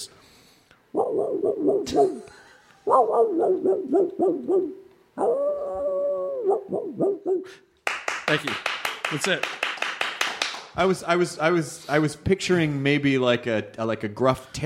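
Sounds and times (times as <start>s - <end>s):
hound dog barking: 0.9s - 2.3s, 2.9s - 5.4s, 6.4s - 7.6s
speech: 1.4s - 5.6s, 6.5s - 7.7s, 8.3s - 9.6s, 10.8s - 14.6s
hound baying with wavering yodeling howls: 2.9s - 7.5s.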